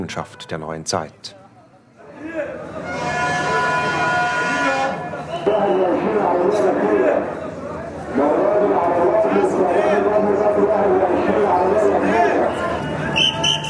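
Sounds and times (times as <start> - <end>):
speech: 0.0 - 1.4
crowd murmuring and chattering in a busy main railway station: 1.4 - 13.6
train tonal horn or brake whine: 2.8 - 5.1.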